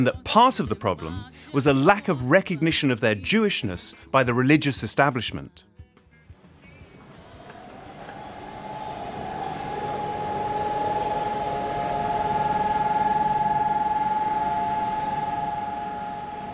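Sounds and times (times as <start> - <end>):
speech: 0.0 - 5.7
air-raid siren in Tel Aviv marking Holocaust Memorial Day: 7.0 - 16.5.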